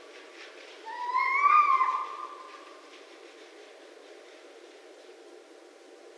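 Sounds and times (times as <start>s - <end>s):
red fox crying: 0.9s - 2.7s.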